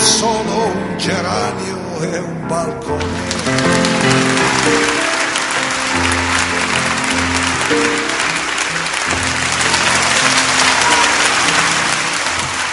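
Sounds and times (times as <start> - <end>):
speech: 0.2 - 5.0
large concert audience applauding after a live song in Barcelona: 3.0 - 12.7.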